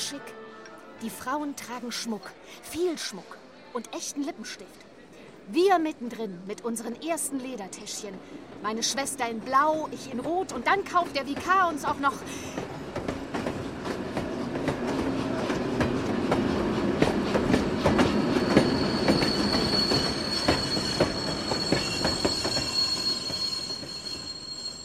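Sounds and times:
speech: 0.1 - 0.4, 1.0 - 4.8, 5.5 - 12.8
train wheels rumbling with rhythmic clacks on railway line: 10.2 - 24.8
high metallic train squeal: 18.0 - 24.8.

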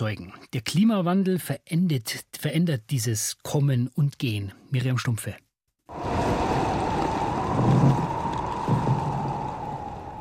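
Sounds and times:
speech: 0.0 - 6.1
icebreaker ship engine roar: 5.9 - 10.1.

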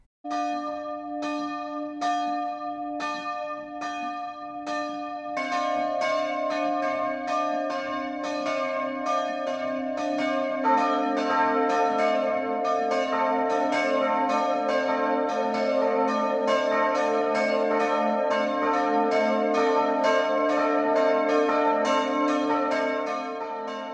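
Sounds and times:
three Protestant church bells in Dornheim Lower Franconia Germany ringing the noon peal: 0.3 - 23.9.

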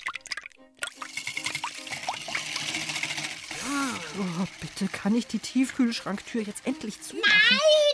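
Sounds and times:
cream, eggs and sugar stirred in a bowl: 1.1 - 7.1
speech: 4.4 - 7.9.

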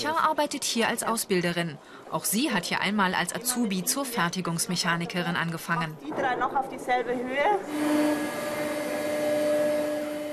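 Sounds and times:
speech: 0.0 - 8.6
CNC milling machine cutting tool shapes from a foam mat: 7.7 - 10.3.

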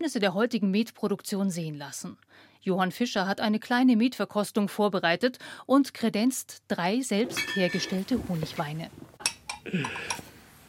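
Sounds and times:
speech: 0.0 - 10.3
small water glasses of homemade mead clinking in a toast: 7.3 - 8.1, 9.2 - 10.3.

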